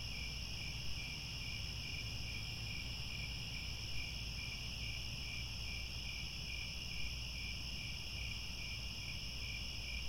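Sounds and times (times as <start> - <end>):
crickets chirping in a chorus at twilight: 0.0 - 10.0.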